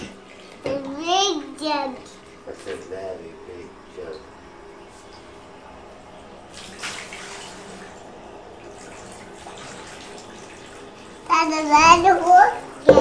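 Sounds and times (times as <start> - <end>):
speech: 1.6 - 4.3, 11.5 - 12.9
water pouring into a bathtub: 6.5 - 12.9.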